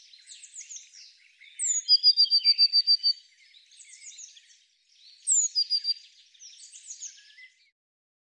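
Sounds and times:
soft scratchy bird chatter: 0:00.0 - 0:07.6
Eurasian blue tit calling: 0:01.5 - 0:03.2, 0:05.3 - 0:06.0.

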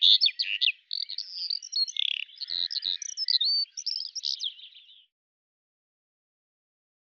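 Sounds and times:
Eurasian skylark song: 0:00.0 - 0:05.1.

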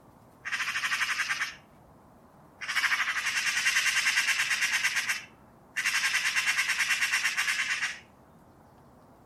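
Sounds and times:
bird giving harsh rapidly pulsed chattering calls: 0:00.4 - 0:01.6, 0:02.6 - 0:08.1.

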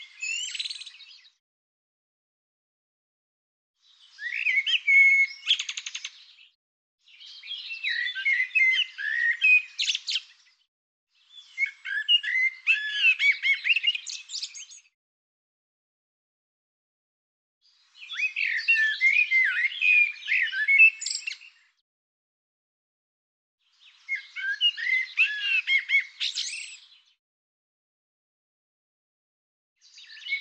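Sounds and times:
bird song: 0:00.0 - 0:01.4, 0:03.8 - 0:15.0, 0:17.6 - 0:21.8, 0:23.6 - 0:27.2, 0:29.8 - 0:30.4.

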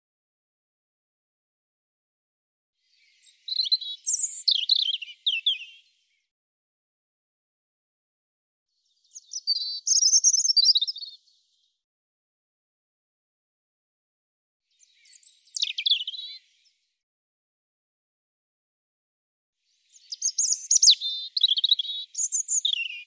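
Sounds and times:
European robin singing warbled phrases: 0:02.9 - 0:06.0, 0:08.9 - 0:11.5, 0:14.7 - 0:16.7, 0:19.7 - 0:23.0.

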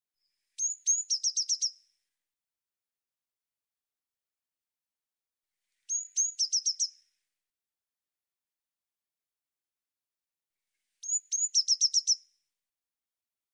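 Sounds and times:
Eurasian blue tit high-pitched call phrase: 0:00.6 - 0:01.8, 0:05.9 - 0:07.0, 0:11.0 - 0:12.2.

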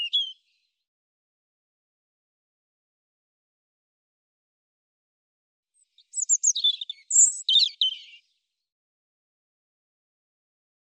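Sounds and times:
European robin singing: 0:00.0 - 0:00.6, 0:05.8 - 0:08.4.

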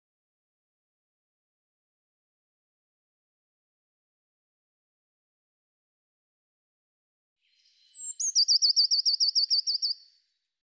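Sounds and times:
Eurasian blue tit calling: 0:07.8 - 0:10.0.

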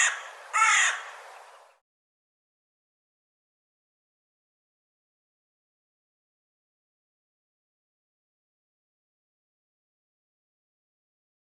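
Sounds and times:
bird giving a harsh raspy caw: 0:00.0 - 0:01.6.

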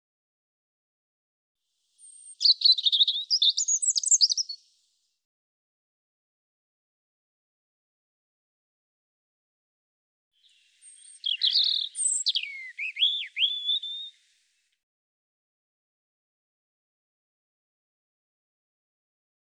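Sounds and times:
European robin singing a scratchy high warble: 0:02.0 - 0:04.7, 0:10.4 - 0:14.4.

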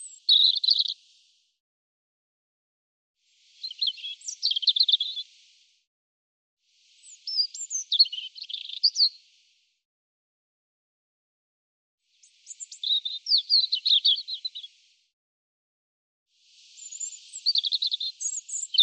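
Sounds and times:
European robin song: 0:00.0 - 0:01.3, 0:03.4 - 0:05.6, 0:06.8 - 0:09.5, 0:12.1 - 0:14.9, 0:16.4 - 0:18.8.

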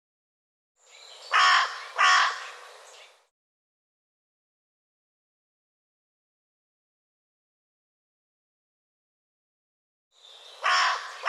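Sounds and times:
bird giving harsh grating caws: 0:01.3 - 0:02.7, 0:10.6 - 0:11.2.

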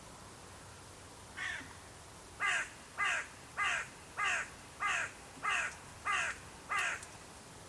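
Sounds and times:
faint background hiss: 0:00.0 - 0:07.6
bird cawing: 0:01.4 - 0:01.8, 0:02.4 - 0:07.1.

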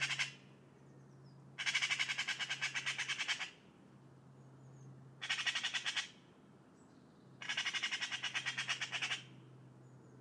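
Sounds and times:
bird calling in rasping, squawky notes: 0:00.0 - 0:00.5, 0:01.6 - 0:03.6, 0:05.2 - 0:06.2, 0:07.4 - 0:09.4.

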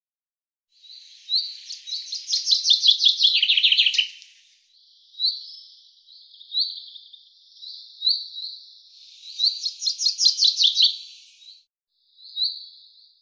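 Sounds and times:
common chaffinch song: 0:00.8 - 0:13.2.

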